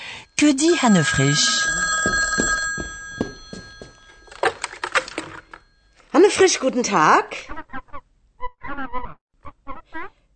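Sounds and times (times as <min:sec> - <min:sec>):
telephone bell ringing with a metallic trill: 0:00.0 - 0:06.6
speech: 0:00.4 - 0:01.8, 0:06.3 - 0:07.6
sharp clattering knocks: 0:01.4 - 0:05.8.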